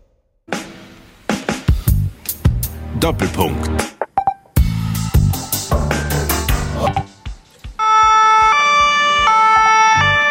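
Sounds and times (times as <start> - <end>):
busy rhythmic backdrop: 0.5 - 9.8
speech: 3.0 - 4.0
ambulance siren wailing: 7.8 - 10.2.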